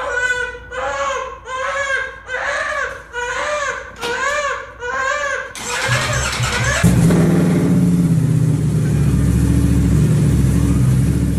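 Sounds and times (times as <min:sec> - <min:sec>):
baby wailing in rhythmic bursts: 0:00.0 - 0:06.9
motorcycle engine revving in a garage: 0:05.6 - 0:11.3.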